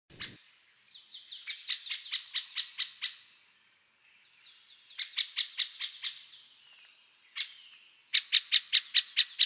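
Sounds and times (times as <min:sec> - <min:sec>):
great spotted woodpecker calling: 0:00.1 - 0:00.4, 0:01.1 - 0:03.3, 0:04.8 - 0:06.4, 0:07.3 - 0:09.4.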